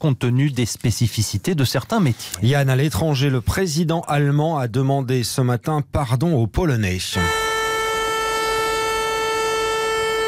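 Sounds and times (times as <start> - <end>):
speech: 0.0 - 7.5
commemorative air-raid siren holding a steady tone: 7.2 - 10.2.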